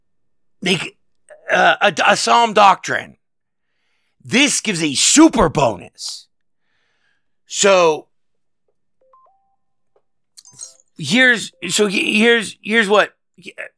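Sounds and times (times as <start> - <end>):
speech: 0.6 - 3.2, 4.2 - 6.3, 7.5 - 8.1, 10.6 - 13.7
two-note electronic notification tone from an iPad: 9.0 - 9.6.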